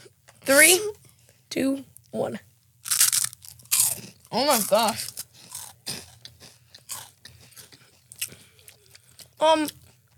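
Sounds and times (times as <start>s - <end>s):
speech: 0.5s - 2.5s, 4.3s - 5.1s, 9.4s - 9.8s
crunching and biting into square airy spicy corn chips: 2.8s - 10.1s.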